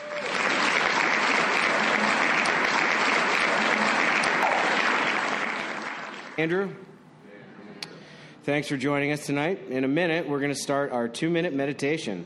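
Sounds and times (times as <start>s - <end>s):
crowd applause: 0.0s - 6.4s
speech: 6.4s - 6.9s, 8.4s - 12.2s.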